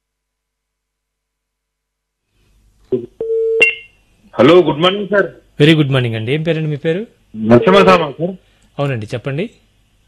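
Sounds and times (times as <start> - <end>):
speech: 2.9 - 3.2, 4.4 - 9.6
phone line tone after a call is cut off: 3.2 - 3.8, 7.5 - 8.0.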